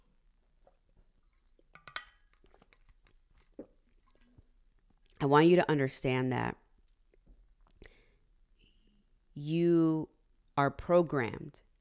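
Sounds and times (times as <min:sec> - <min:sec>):
person sipping water: 0:02.3 - 0:05.1
speech: 0:05.2 - 0:06.6, 0:09.4 - 0:11.7.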